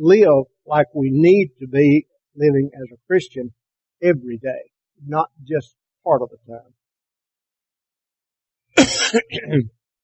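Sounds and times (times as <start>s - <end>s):
speech: 0.0s - 6.8s, 8.8s - 9.8s
person coughing and clearing their throat: 8.8s - 9.7s.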